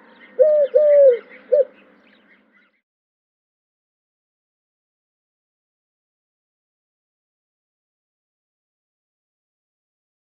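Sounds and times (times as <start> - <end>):
Eurasian collared dove cooing: 0.4 - 1.7.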